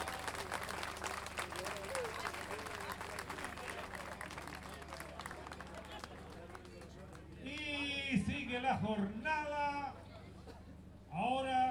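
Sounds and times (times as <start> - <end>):
crowd voices: 0.0 - 7.2
audience applause for the children at a gathering of payadores: 0.0 - 7.3
speech: 8.1 - 10.0, 11.2 - 11.7.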